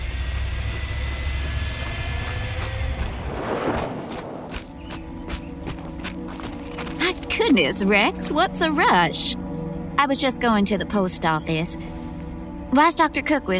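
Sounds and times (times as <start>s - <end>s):
car engine idling as the car backs out of a driveway: 0.0s - 13.5s
rushing swell: 3.1s - 4.8s
speech: 7.6s - 9.4s, 10.0s - 11.9s, 12.7s - 13.5s.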